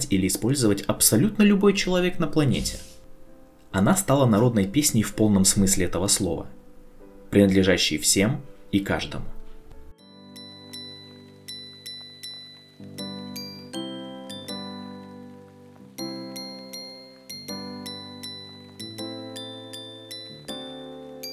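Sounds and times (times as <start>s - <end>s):
speech: 0.1s - 3.0s, 3.7s - 6.6s, 7.3s - 9.4s
jingling bells playing a lively repeating melody: 10.0s - 21.3s.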